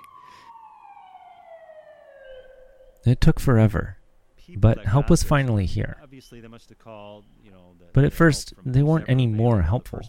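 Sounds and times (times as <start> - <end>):
emergency vehicle siren wailing: 0.0 - 3.1
speech: 3.0 - 10.0.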